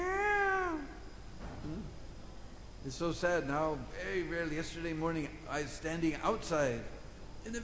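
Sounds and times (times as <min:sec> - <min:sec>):
voice imitating a peacock's cry: 0:00.0 - 0:01.0
faint brief murmur: 0:00.0 - 0:07.6
speech: 0:02.8 - 0:07.6.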